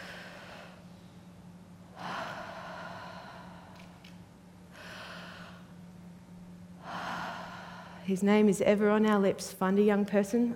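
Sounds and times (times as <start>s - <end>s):
group of young people breathing in unison: 0.0s - 0.9s, 1.9s - 5.8s, 6.8s - 8.1s
low steady hum: 0.0s - 10.5s
speech: 8.1s - 10.5s.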